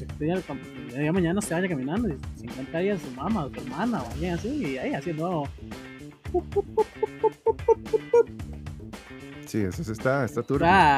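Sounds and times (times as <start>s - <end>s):
speech: 0.2s - 8.5s, 9.5s - 10.9s
person imitating duck quacks: 6.4s - 8.3s.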